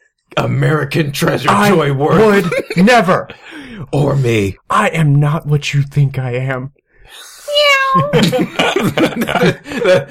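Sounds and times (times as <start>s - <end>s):
speech: 0.4s - 10.0s
laughter: 2.0s - 3.0s, 7.9s - 10.0s
cat meowing: 7.5s - 8.2s.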